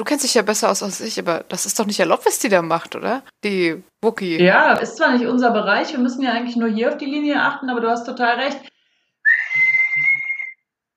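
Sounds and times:
speech: 0.0s - 8.7s
electronically amplified referee whistle blast over radio network: 9.3s - 10.6s.

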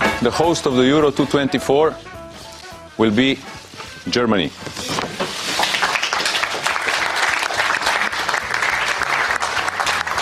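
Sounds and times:
speech: 0.2s - 2.1s, 3.0s - 4.9s
crowd applauding at an announcement: 5.5s - 10.2s.

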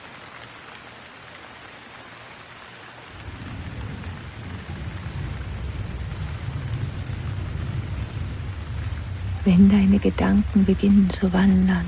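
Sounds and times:
steady rain pouring down: 0.0s - 11.8s
deep continuous rumble of thunder: 3.1s - 11.8s
speech: 9.4s - 11.8s.

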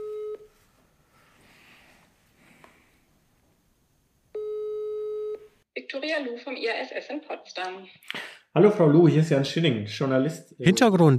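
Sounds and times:
telephone ringback tone of an outgoing call: 0.0s - 0.5s, 4.4s - 5.5s
speech: 5.9s - 11.1s.

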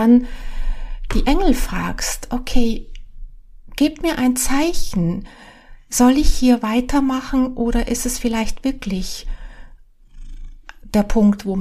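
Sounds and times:
speech: 0.0s - 0.5s, 1.1s - 2.9s, 3.8s - 9.4s, 10.9s - 11.6s
cat purring: 8.5s - 11.5s.

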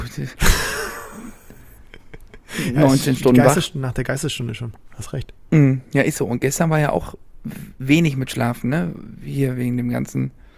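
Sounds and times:
speech: 0.2s - 1.4s, 2.6s - 10.4s
man yawning: 0.4s - 1.6s.

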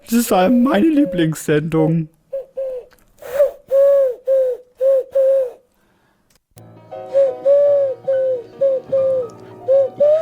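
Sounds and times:
speech: 0.1s - 2.2s
person imitating pigeon cooing in a radio studio: 2.4s - 5.6s, 7.2s - 10.1s.

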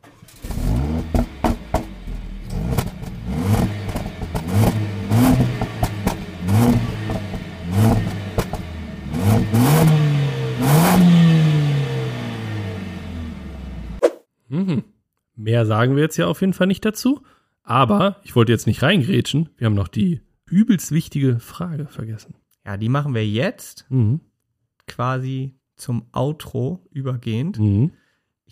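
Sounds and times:
record-holding car engine revving and accelerating: 0.0s - 14.0s
speech: 15.4s - 24.3s, 24.9s - 28.4s.

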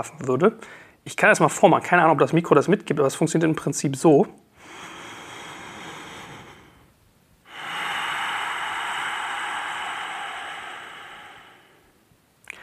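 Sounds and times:
speech: 0.0s - 4.9s
loud ocean-like yogic breaths close to the microphone: 4.6s - 12.6s.

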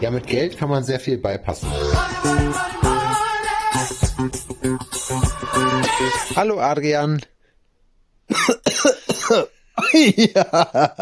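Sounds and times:
speech: 0.0s - 2.8s, 4.1s - 7.3s, 8.3s - 11.0s
man coughing hard with rattling coughs: 8.3s - 10.4s.

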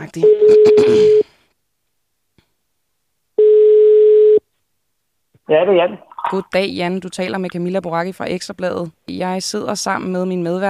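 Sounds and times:
speech: 0.0s - 1.2s, 5.5s - 10.6s
telephone ringback tone as a call is placed to a hairdresser: 3.4s - 4.4s.

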